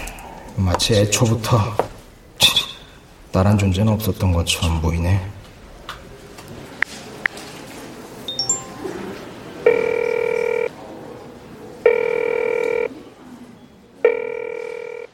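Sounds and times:
speech: 0.6s - 1.8s, 3.3s - 5.4s
telephone ringing: 8.3s - 10.8s, 11.8s - 12.9s, 14.0s - 15.1s.

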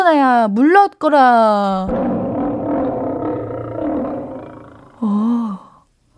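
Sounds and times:
speech: 0.1s - 2.3s, 5.0s - 5.4s
deep sustained tiger roar: 1.8s - 5.1s.

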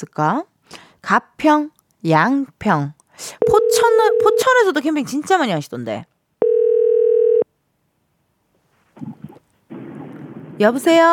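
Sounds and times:
speech: 0.0s - 6.1s, 10.6s - 11.1s
telephone ringback tone while placing a phone call: 3.4s - 4.6s, 6.4s - 7.5s.

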